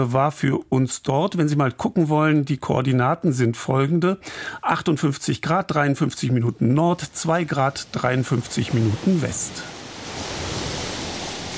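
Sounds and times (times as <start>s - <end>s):
speech: 0.0s - 10.4s
wind-driven waves washing onto island coast: 4.2s - 11.5s
gusty wind rushing over surf: 6.9s - 11.5s.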